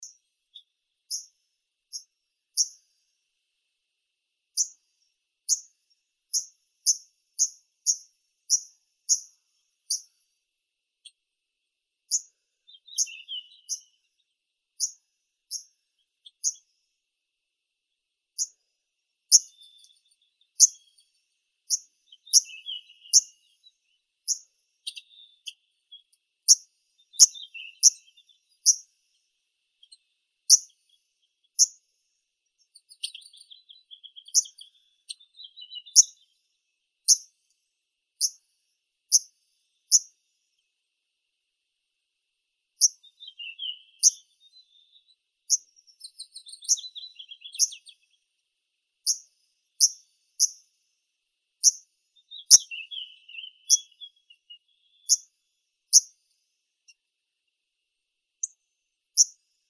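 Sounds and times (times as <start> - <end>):
Phylloscopus borealis arctic warbler: 0.0 - 3.1, 4.6 - 10.2, 12.1 - 14.2, 14.8 - 16.8, 19.3 - 29.1, 32.6 - 36.4, 42.8 - 48.2, 49.1 - 50.7, 51.6 - 56.2.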